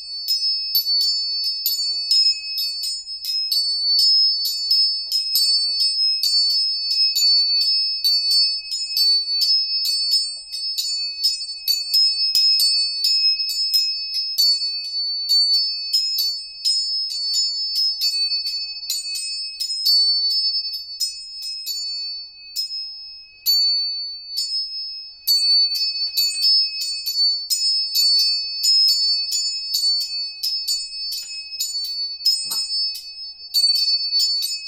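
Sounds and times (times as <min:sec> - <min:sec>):
tuning forks struck and ringing: 0:00.0 - 0:34.6.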